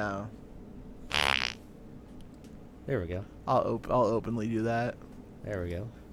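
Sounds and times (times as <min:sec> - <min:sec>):
speech: 0:00.0 - 0:00.4, 0:02.9 - 0:06.1
fart: 0:01.1 - 0:01.6.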